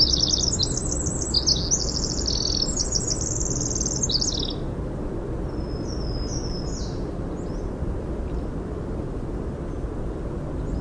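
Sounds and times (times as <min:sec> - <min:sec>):
Winter wren singing: 0:00.0 - 0:04.7, 0:05.6 - 0:07.6
steady low background rumble: 0:00.0 - 0:10.8.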